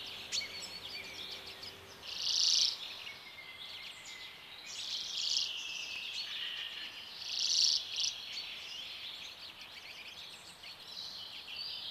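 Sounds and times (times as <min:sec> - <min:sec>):
Common Redpoll calls with quick high buzzy twitters: 0:00.0 - 0:03.0, 0:06.3 - 0:08.7
light hiss: 0:00.0 - 0:11.8.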